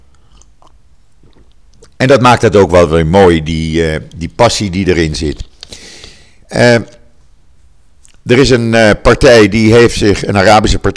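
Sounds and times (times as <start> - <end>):
gulp of water: 0.0 - 2.0
person sipping water: 0.0 - 2.0, 5.4 - 8.3
wet mouth clicks: 0.0 - 2.0, 5.4 - 5.8, 8.0 - 8.3
faint room noise: 0.0 - 10.9
speech: 2.0 - 5.5, 6.5 - 7.0, 8.2 - 10.9.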